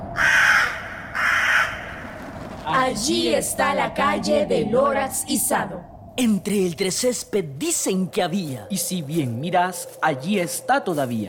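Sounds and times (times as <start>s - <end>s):
crow cawing: 0.0s - 2.2s
faint low rumble: 0.0s - 11.2s
speech: 2.7s - 11.2s.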